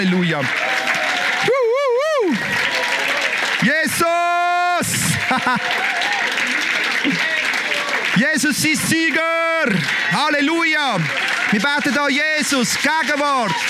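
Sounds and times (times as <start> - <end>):
speech: 0.0 - 0.7, 5.3 - 6.0, 7.0 - 7.3, 8.2 - 13.6
excited shouts and cheering voices: 0.0 - 13.6
large crowd applauding: 0.0 - 13.6
laughter: 1.4 - 13.6.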